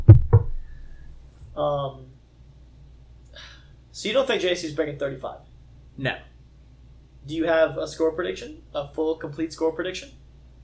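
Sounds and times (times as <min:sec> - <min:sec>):
knocking on wood: 0:00.0 - 0:00.6
speech: 0:04.0 - 0:06.3, 0:07.2 - 0:10.2.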